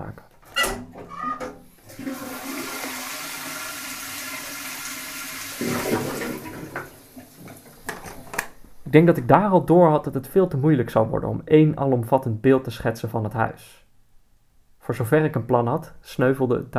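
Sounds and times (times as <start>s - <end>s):
toilet with wooden seat and cast-iron cistern flushing: 1.6s - 8.4s
speech: 8.9s - 13.8s, 14.9s - 16.7s.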